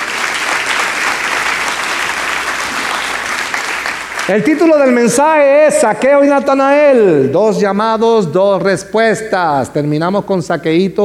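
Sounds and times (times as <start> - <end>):
audience applauding: 0.0 - 5.9
speech: 4.3 - 11.0.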